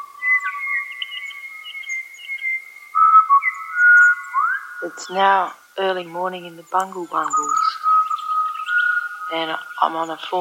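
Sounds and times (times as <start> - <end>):
Pied Butcherbird whistling song: 0.0 - 10.4
speech: 4.8 - 7.8, 9.3 - 10.4.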